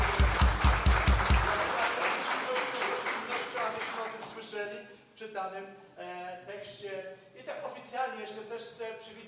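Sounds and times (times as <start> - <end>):
audience applauding: 0.0 - 4.3
speech: 5.4 - 6.0, 6.6 - 9.2.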